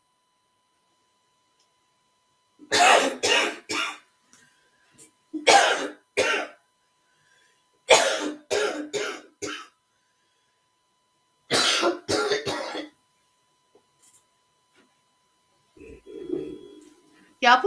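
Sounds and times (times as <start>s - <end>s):
sick person coughing in harsh fits: 2.7s - 4.0s, 5.4s - 6.6s, 7.9s - 9.7s, 11.5s - 13.0s
speech: 17.4s - 17.6s.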